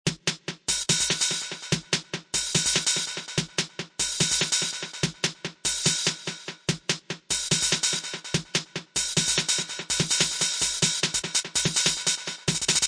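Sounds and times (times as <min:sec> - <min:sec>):
loud echo hi-hats in wobble techno: 0:00.1 - 0:12.8
wobble techno music: 0:00.1 - 0:12.8.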